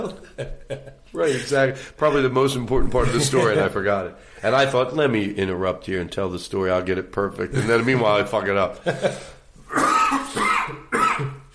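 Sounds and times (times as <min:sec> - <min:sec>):
speech: 0:00.0 - 0:09.8
person coughing and clearing throat in rough raspy bursts: 0:09.7 - 0:11.5.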